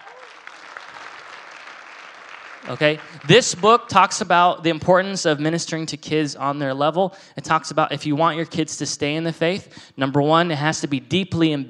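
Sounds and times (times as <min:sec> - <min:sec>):
room full of people applauding: 0:00.0 - 0:03.6
speech: 0:02.6 - 0:11.6.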